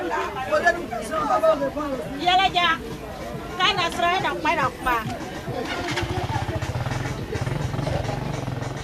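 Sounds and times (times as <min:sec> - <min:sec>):
busy outdoor market crowd chattering: 0:00.0 - 0:08.8
low engine rumble: 0:04.6 - 0:08.8.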